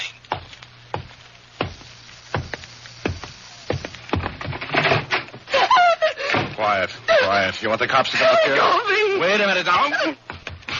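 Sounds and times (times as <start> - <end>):
steady footsteps thudding: 0.3 - 5.5, 10.3 - 10.7
speech: 6.7 - 10.3.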